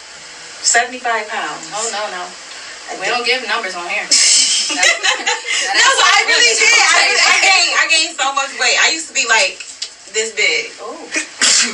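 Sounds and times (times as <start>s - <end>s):
speech: 0.6s - 11.7s
laughter: 4.5s - 8.1s
short sharp sneeze: 11.2s - 11.7s.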